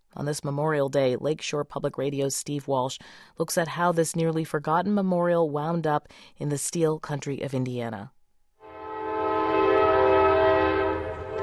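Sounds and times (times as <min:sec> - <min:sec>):
speech: 0:00.2 - 0:08.2
train horn blast: 0:08.6 - 0:11.4.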